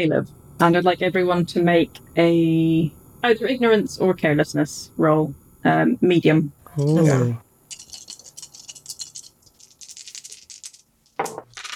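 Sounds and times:
speech: 0.0s - 7.4s
three dice rattling in a cup or cupped hand: 7.7s - 11.7s.

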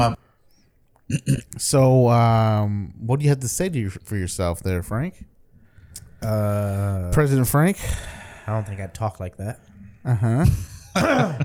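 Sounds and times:
speech: 0.0s - 0.2s, 1.1s - 5.3s, 5.9s - 11.4s
person clearing throat: 1.1s - 1.5s, 10.5s - 11.4s.

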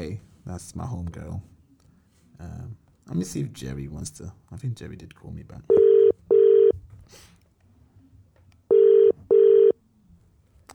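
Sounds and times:
speech: 0.0s - 1.5s, 2.4s - 5.8s
ringback tone of an unanswered outgoing phone call over a phone line: 5.7s - 6.8s, 8.7s - 9.7s.

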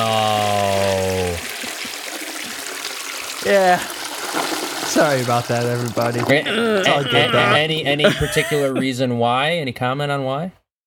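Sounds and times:
laughter: 0.0s - 2.7s, 6.2s - 9.0s
toilet flushing: 0.0s - 7.6s
speech: 3.5s - 3.9s, 4.9s - 10.6s.

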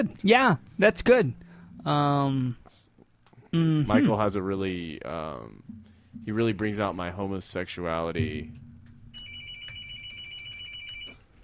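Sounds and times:
speech: 0.0s - 2.9s, 3.5s - 8.6s
low hum: 0.0s - 11.4s
telephone ringing with an electronic warbling tone: 9.1s - 11.3s.

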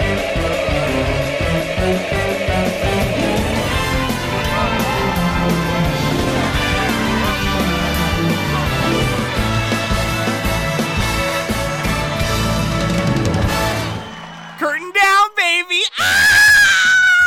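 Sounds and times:
upbeat music: 0.0s - 15.7s
person screaming excitedly: 15.8s - 17.2s.

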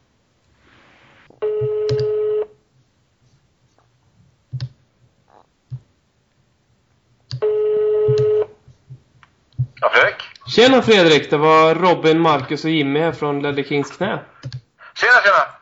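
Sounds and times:
outgoing phone call ringback tones: 1.4s - 2.6s, 7.4s - 8.5s
speech: 10.6s - 14.6s.

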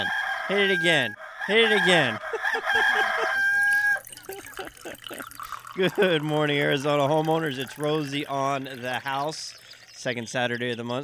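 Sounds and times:
speech: 0.0s - 3.0s, 4.9s - 11.0s
rooster crowing sound effect: 0.0s - 4.0s
laughter: 1.5s - 6.4s.

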